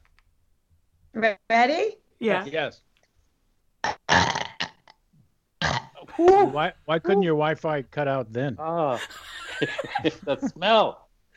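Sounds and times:
speech: 1.2 - 2.9, 6.2 - 11.0
person imitating a burp with their voice: 3.8 - 5.0, 5.6 - 6.0
laughter: 6.0 - 6.8, 8.9 - 10.7.

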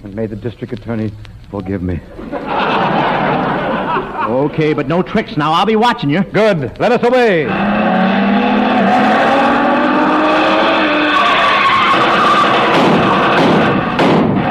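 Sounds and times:
speech: 0.1 - 2.6, 4.0 - 7.8
laughter: 1.6 - 5.0
tires screeching in a sharp skid: 7.4 - 13.9
car engine roaring at speed: 7.4 - 14.0
brief thump: 12.7 - 14.4.

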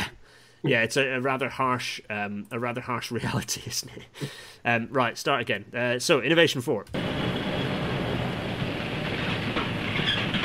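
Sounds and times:
speech: 0.6 - 7.4
freight train wagons rolling through a rail yard: 7.0 - 10.4
brief metallic squeal of freight train wagons: 9.2 - 10.4.

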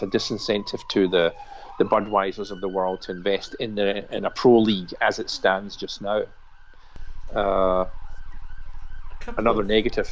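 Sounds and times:
speech: 0.0 - 6.4, 7.3 - 8.0, 9.2 - 10.1
ambulance siren wailing: 0.0 - 10.1
rhythmic pulsing noise: 7.0 - 10.1.

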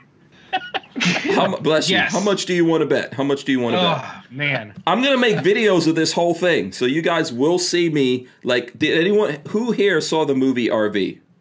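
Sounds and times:
laughter: 0.4 - 2.4, 5.0 - 5.9
sharp sneeze: 1.0 - 2.3
speech: 1.0 - 11.2.

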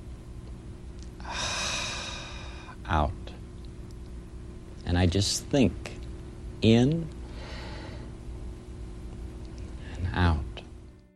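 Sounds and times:
person breathing in slowly: 1.2 - 2.8
speech: 2.9 - 3.2, 4.9 - 6.0, 6.6 - 7.2.

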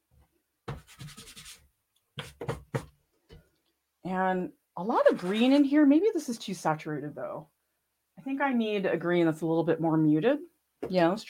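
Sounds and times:
pastel rubbing on rigid coarse sanded board: 0.7 - 1.6, 2.2 - 2.9
speech: 4.1 - 7.5, 8.2 - 11.2.

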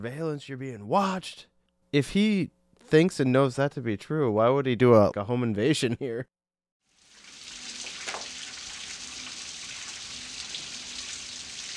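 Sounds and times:
speech: 0.0 - 6.4
steady rain hissing: 7.0 - 11.7.

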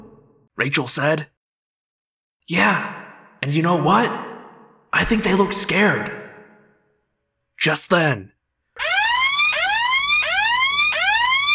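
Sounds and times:
speech: 0.6 - 1.4, 2.5 - 4.3, 4.9 - 6.2, 7.6 - 8.9
loud alarm siren wailing in rising sweeps: 8.8 - 11.5.

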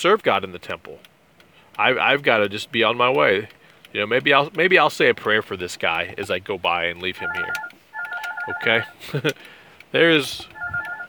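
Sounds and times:
speech: 0.0 - 1.1, 1.8 - 7.7, 8.4 - 10.5
electronic phone tone: 7.2 - 8.9, 10.5 - 11.0.

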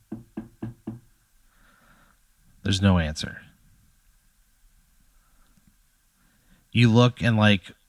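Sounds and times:
firm knocks on a wooden door: 0.0 - 1.1
speech: 2.6 - 3.5, 6.8 - 7.8.

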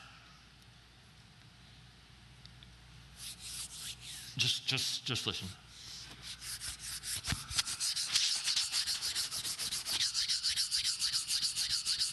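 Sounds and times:
rhythmic friction rubbing like sandpaper smoothing a surface: 3.2 - 12.1
speech: 4.4 - 5.7.

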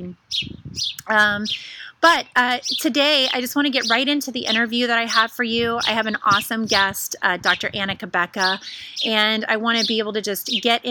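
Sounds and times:
nesting bird chirping overhead: 0.0 - 10.8
speech: 0.0 - 10.8.

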